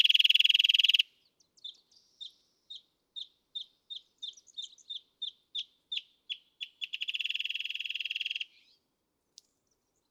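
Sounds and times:
Wrentit song with clear notes and rapid trills: 0:00.0 - 0:08.9.

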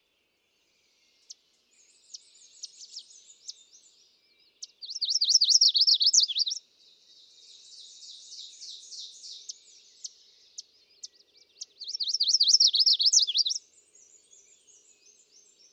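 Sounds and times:
chestnut-sided warbler song: 0:00.0 - 0:15.7.

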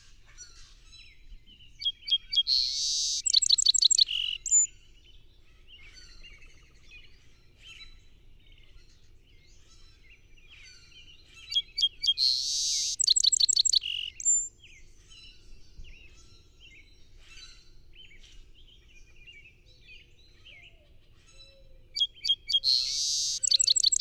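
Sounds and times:
song sparrow singing: 0:00.0 - 0:23.9
faint twittering: 0:02.4 - 0:04.7, 0:12.1 - 0:14.5, 0:22.1 - 0:23.9.

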